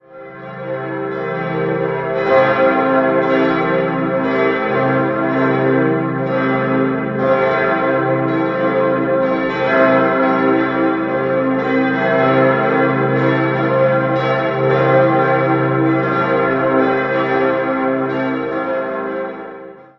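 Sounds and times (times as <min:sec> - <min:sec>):
parish church bells ringing in Dingolfing-Höll: 0:00.0 - 0:19.9.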